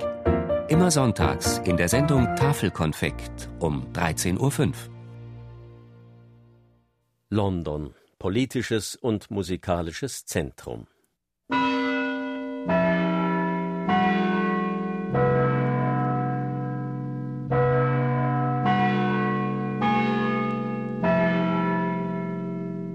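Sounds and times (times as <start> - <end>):
deep clock-tower bells chiming a slow melody: 0.7 - 3.0, 11.5 - 22.9
speech: 0.7 - 4.9, 7.3 - 10.9.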